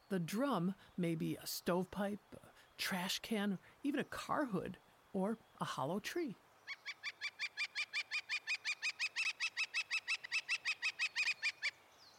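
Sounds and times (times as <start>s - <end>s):
speech: 0.1s - 6.4s
northern flicker calling loud nasal notes: 6.6s - 12.1s.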